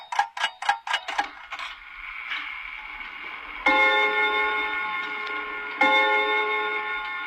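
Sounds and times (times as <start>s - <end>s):
pendulum clock resonant chime strikes: 0.0s - 1.7s, 3.6s - 7.2s
pendulum clock ticking: 0.0s - 7.2s.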